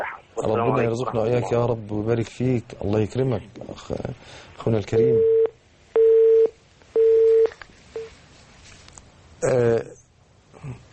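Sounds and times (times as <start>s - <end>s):
speech: 0.4s - 5.4s, 9.4s - 10.0s, 10.6s - 10.8s
incoming telephone call electronic ring tones: 5.1s - 8.1s.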